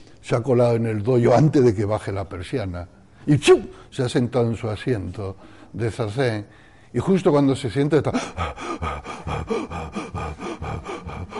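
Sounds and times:
speech: 0:00.3 - 0:10.9
voice imitating rapid out-of-breath panting: 0:08.1 - 0:11.3.

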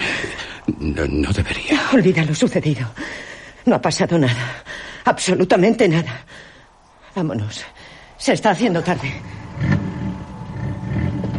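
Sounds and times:
speech: 0:00.7 - 0:06.5, 0:07.2 - 0:09.7
car engine starting and revving: 0:09.0 - 0:11.3.

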